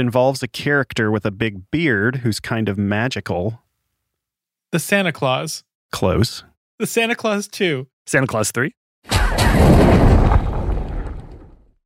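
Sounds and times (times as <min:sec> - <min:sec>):
speech: 0:00.0 - 0:03.6, 0:04.7 - 0:09.9
fantasy film effect of a magic umbrella lighting a fire: 0:09.1 - 0:11.7
sharp cracks of a magic fire effect: 0:09.1 - 0:11.7.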